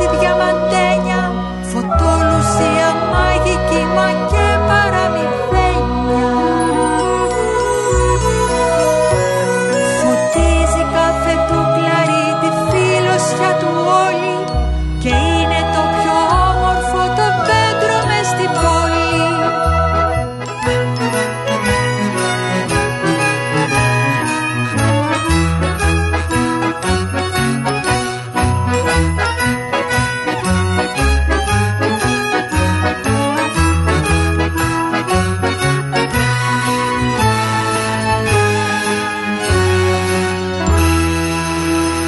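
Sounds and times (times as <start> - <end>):
female singer singing a Greek song: 0.0 - 7.4, 10.0 - 19.7
full instrumentation with strong bass line and bright layered tones: 0.0 - 42.0.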